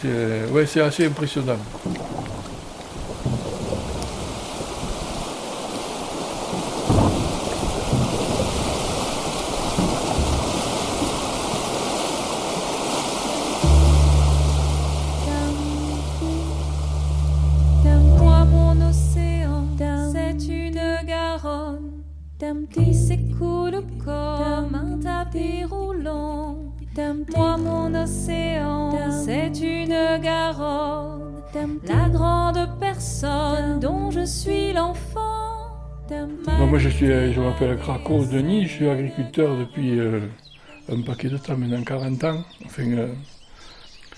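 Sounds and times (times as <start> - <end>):
speech: 0.0 - 2.0, 37.1 - 43.4
Garonne river in flood carrying gravel downstream: 0.0 - 18.9
music: 13.6 - 40.2.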